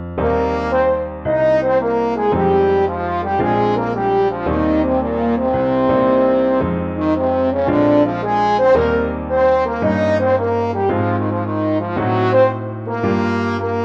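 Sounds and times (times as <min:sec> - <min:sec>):
fast trombone playing: 0:00.2 - 0:13.8.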